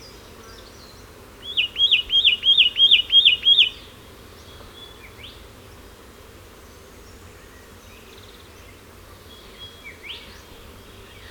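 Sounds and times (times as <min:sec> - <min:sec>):
Satin flycatcher Myiagra Cyanoleuca calling: 0:01.5 - 0:03.8.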